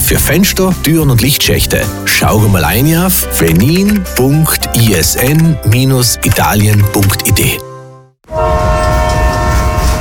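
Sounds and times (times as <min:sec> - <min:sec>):
speech: 0:00.1 - 0:07.7
multi-tone train horn: 0:08.3 - 0:10.0.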